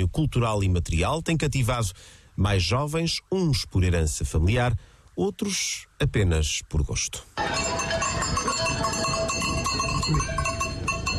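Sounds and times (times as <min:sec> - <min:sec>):
speech: 0:00.0 - 0:10.5
cowbells clanging on a herd of cows driven up a mountain: 0:07.4 - 0:11.1.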